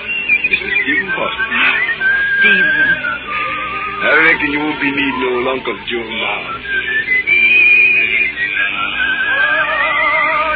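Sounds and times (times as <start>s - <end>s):
person whistling imitating a mockingbird's song: 0.0s - 4.1s, 6.4s - 10.5s
speech: 2.4s - 2.9s, 4.1s - 6.7s.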